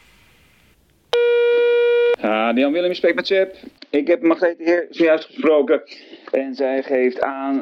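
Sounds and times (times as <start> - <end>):
telephone tone while a call is dialled: 1.2 - 2.2
speech: 2.5 - 7.6.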